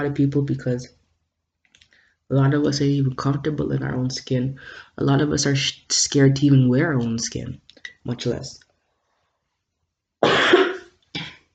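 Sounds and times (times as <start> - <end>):
speech: 0.0 - 1.0, 2.3 - 8.6
person coughing: 10.2 - 11.5.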